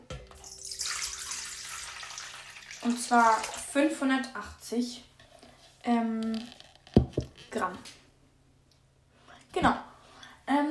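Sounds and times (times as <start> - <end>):
lukewarm water pouring into a large bowl on a scale for yeast dough: 0.4 - 3.8
speech: 2.8 - 5.1, 5.8 - 6.6, 7.6 - 8.0, 9.5 - 9.9, 10.5 - 10.6.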